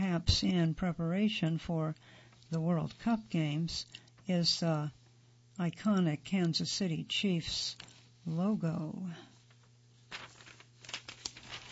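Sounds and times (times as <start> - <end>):
speech: 0.2 - 5.0, 5.6 - 9.3
paper page turning: 9.4 - 11.7.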